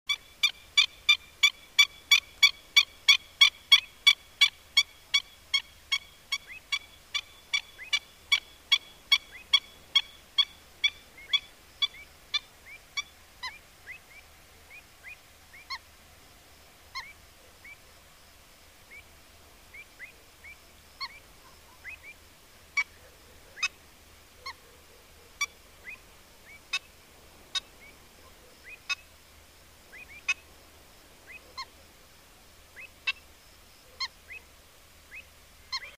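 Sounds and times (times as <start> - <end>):
Black-winged stilt Himantopus himantopus calling: 0.1 - 15.8, 25.3 - 29.1, 29.9 - 30.4, 32.7 - 34.5, 35.1 - 35.9.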